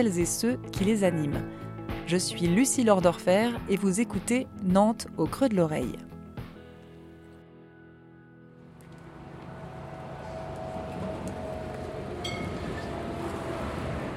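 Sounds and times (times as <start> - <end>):
speech: 0.0 - 6.1
tram on line 3 in Nantes rumbling along: 8.6 - 14.1.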